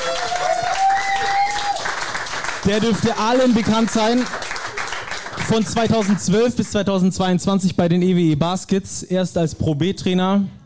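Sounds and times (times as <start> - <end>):
audience applause as a guest is introduced at a live event: 0.0 - 6.4
speech: 2.6 - 4.4, 5.4 - 10.6.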